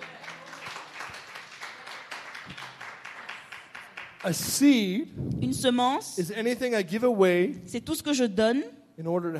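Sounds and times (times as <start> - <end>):
group of people applauding: 0.0 - 4.9
speech: 4.2 - 9.3.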